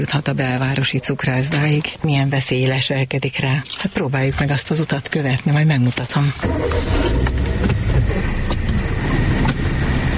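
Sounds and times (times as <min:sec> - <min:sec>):
speech: 0:00.0 - 0:08.3
road traffic on a busy road between a park and the city centre: 0:00.0 - 0:10.1.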